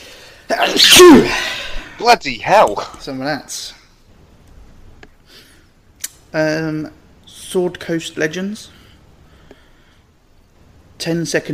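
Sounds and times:
person sneezing: 0.5s - 2.0s
speech: 0.5s - 3.8s, 6.3s - 8.8s, 11.0s - 11.5s.

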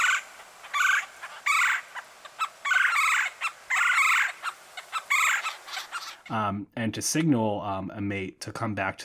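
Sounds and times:
red-bellied woodpecker chuck calls: 0.0s - 6.4s
speech: 6.3s - 9.0s.

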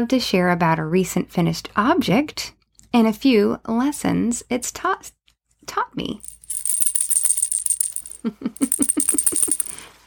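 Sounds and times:
speech: 0.0s - 6.3s, 8.2s - 9.0s
tiny toy lion rattle shaken: 6.2s - 9.8s.

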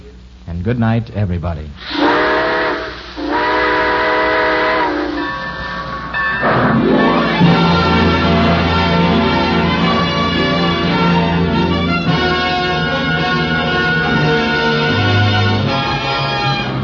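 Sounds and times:
speech: 0.6s - 2.1s
steam train whistle: 1.8s - 16.8s
steam locomotive chuffing and rumbling as it pulls away: 2.2s - 16.8s.

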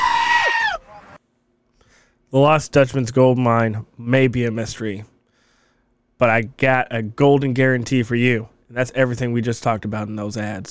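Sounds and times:
goat screaming sound effect: 0.0s - 1.2s
speech: 2.3s - 5.1s, 6.2s - 10.6s.

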